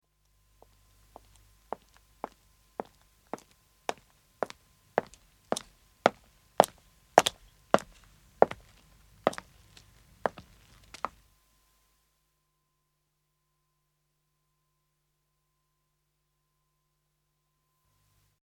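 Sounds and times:
man's footsteps walking on pavement: 0:00.6 - 0:11.2.

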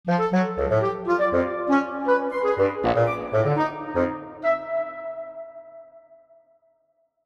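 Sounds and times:
weird frumpy cartoon woodwind melody: 0:00.1 - 0:06.5.

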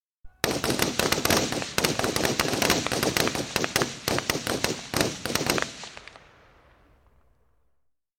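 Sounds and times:
5.6mm gas operated rifles firing single shots: 0:00.4 - 0:07.3.

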